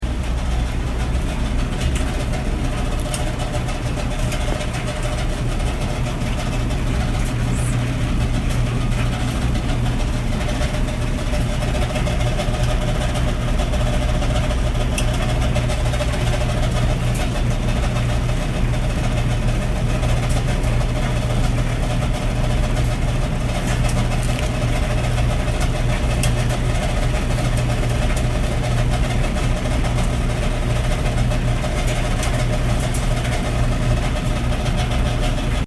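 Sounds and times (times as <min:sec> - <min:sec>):
clothes dryer in a house basement: 0:00.0 - 0:35.6.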